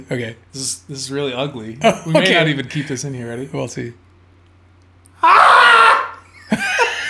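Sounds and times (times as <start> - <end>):
speech: 0.0 - 4.0
laughter: 1.8 - 3.0, 6.0 - 7.0
person screaming imitating a Bigfoot call: 5.2 - 6.2.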